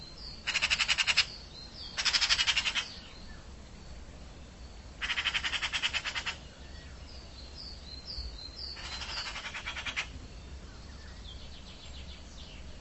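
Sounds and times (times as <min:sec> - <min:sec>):
bird giving harsh rattling calls: 0:00.4 - 0:01.3, 0:02.0 - 0:03.0, 0:05.0 - 0:06.4, 0:08.8 - 0:10.1.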